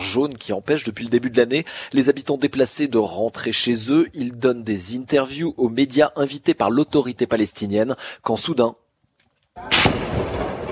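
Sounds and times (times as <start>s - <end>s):
speech: 0.1s - 8.8s, 9.6s - 10.1s
gunshots fired from inside a refugee camp: 9.6s - 10.6s.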